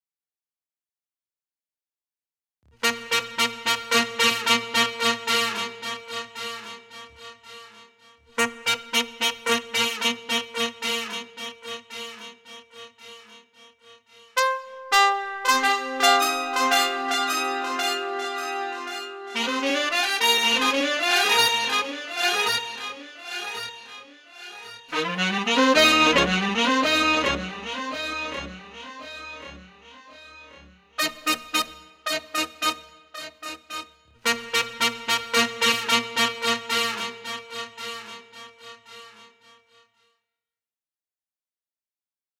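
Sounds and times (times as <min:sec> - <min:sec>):
brass fanfare: 0:02.8 - 0:07.8, 0:08.4 - 0:12.3, 0:14.4 - 0:39.3.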